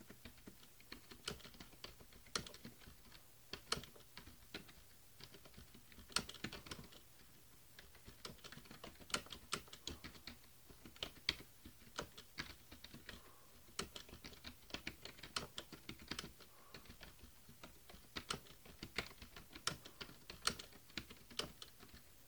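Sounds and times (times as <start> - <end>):
multimedia computer keyboard: 0.0 - 22.1.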